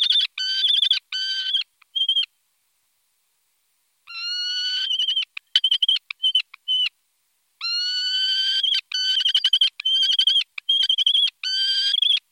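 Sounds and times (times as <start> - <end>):
falcon screaming and chattering: 0.0 - 2.3, 4.1 - 6.9, 7.6 - 12.3.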